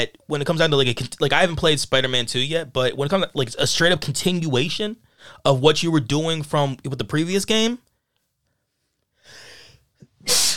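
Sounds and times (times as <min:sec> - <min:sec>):
speech: 0:00.0 - 0:07.8, 0:10.2 - 0:10.5
person sneezing: 0:10.1 - 0:10.5.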